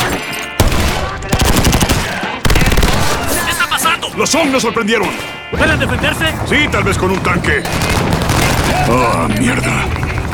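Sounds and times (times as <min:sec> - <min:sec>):
rapid automatic gunfire in an ambush firefight: 0:00.6 - 0:03.3, 0:07.6 - 0:09.1
speech: 0:04.2 - 0:10.3.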